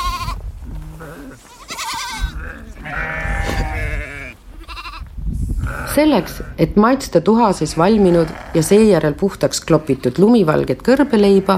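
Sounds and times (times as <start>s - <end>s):
flock of goats and sheep bleating at a watering place: 0.0s - 6.7s, 7.6s - 11.5s
low rumble of galloping goats and sheep: 0.0s - 11.5s
speech: 6.0s - 11.5s.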